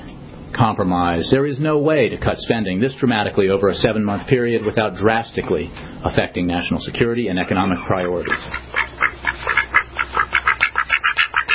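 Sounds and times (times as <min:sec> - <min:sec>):
speech: 0:00.6 - 0:08.7
ducks quacking: 0:07.4 - 0:11.5.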